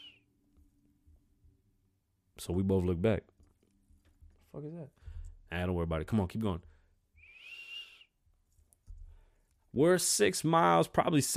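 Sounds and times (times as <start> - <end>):
person whistling one sustained note imitating a whistle call: 0.0 - 0.3, 7.2 - 8.1
speech: 2.4 - 3.3, 4.5 - 6.7, 9.8 - 11.3.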